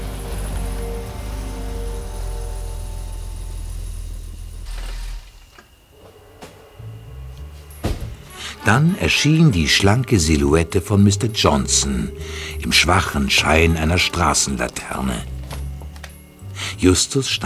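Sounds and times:
Mercedes car pulling up and idling on a street at midnight: 0.0s - 5.6s, 11.2s - 17.4s
speech: 8.7s - 15.4s, 16.8s - 17.4s.

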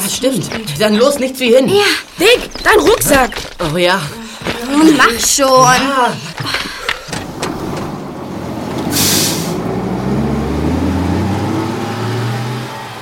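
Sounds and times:
clunks: 0.0s - 9.0s
bus engine droning: 0.0s - 12.9s
speech: 0.1s - 6.8s
bus air-brake hiss: 8.9s - 9.6s.

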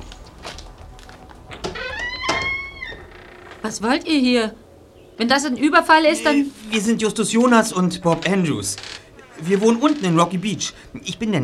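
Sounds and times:
house door hinge squealing as it creaks open: 1.6s - 3.7s, 8.7s - 10.2s
speech: 3.6s - 4.6s, 5.2s - 11.4s.

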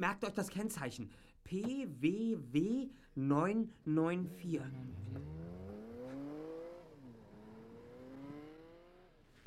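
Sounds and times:
speech: 0.0s - 5.6s
car engine accelerating as it drives off: 4.6s - 9.4s.

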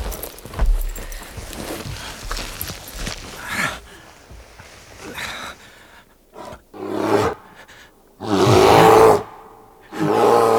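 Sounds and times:
heavy thudding footsteps outside: 0.0s - 5.0s
rustling movement outside: 0.0s - 5.9s
bear roaring: 8.2s - 9.3s, 9.9s - 10.5s.

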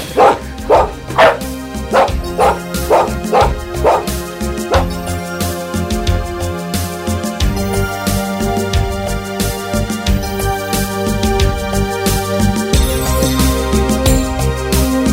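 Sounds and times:
dog barking with woofs and yips: 0.0s - 5.1s
steady music: 0.0s - 15.1s.

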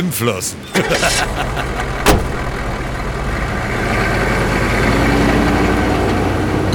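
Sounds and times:
speech: 0.0s - 2.0s
laughter: 0.7s - 2.1s
car engine running as car pulls away: 0.7s - 6.6s
sharp click: 2.0s - 3.1s.

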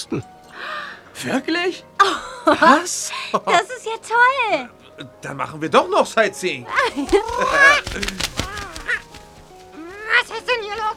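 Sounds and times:
speech: 0.0s - 8.4s
laughter: 2.0s - 3.8s, 6.6s - 9.2s
bird squawking with raspy honking calls: 6.6s - 10.9s.

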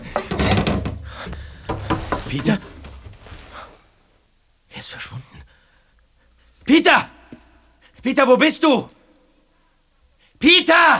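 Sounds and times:
wooden wardrobe door creaking open: 0.0s - 3.9s
speech: 2.3s - 2.8s, 4.8s - 5.5s, 8.0s - 9.0s, 10.4s - 10.9s.

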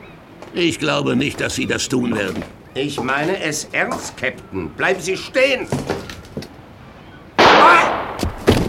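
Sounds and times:
speech: 0.5s - 6.0s
loud revolver gunshot: 7.4s - 8.5s.

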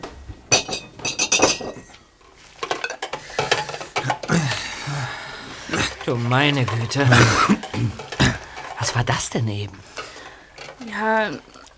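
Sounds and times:
glasses clinking as they are cleared: 0.5s - 4.4s, 5.7s - 9.0s
speech: 6.1s - 8.0s, 9.0s - 9.9s, 11.0s - 11.7s.

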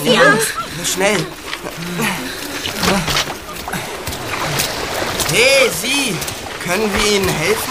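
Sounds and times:
speech: 0.0s - 3.2s, 5.3s - 7.6s
laughter: 0.0s - 4.8s
water splashing around a small boat capsizing in choppy waves: 0.0s - 7.6s.

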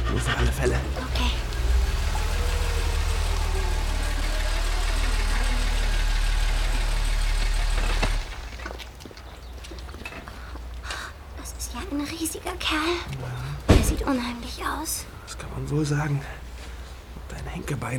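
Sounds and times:
car engine rumbling: 0.0s - 8.8s
speech: 0.1s - 1.4s, 12.4s - 16.4s, 17.6s - 17.9s.

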